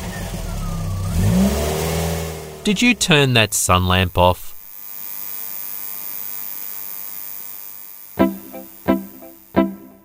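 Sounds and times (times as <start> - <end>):
family car engine revving and driving off: 0.0 - 2.6
speech: 2.6 - 4.5.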